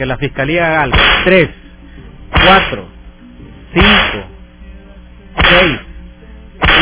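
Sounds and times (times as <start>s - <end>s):
speech: 0.0s - 1.6s, 2.4s - 3.0s
faint hum: 0.0s - 6.8s
whip lashes like belt strikes: 0.9s - 1.3s, 2.4s - 2.8s, 3.8s - 4.3s, 5.4s - 5.9s, 6.6s - 6.8s.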